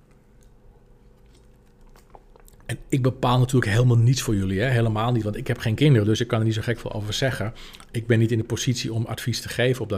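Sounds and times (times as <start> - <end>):
low steady room hum: 0.0 - 9.9
person sipping water: 0.1 - 2.8
speech: 2.7 - 9.9.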